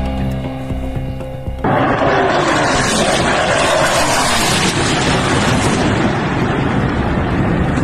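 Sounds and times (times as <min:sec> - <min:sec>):
low mechanical drone: 0:00.0 - 0:07.8
roaring rumble of explosions from a bombardment in a city: 0:01.6 - 0:07.8.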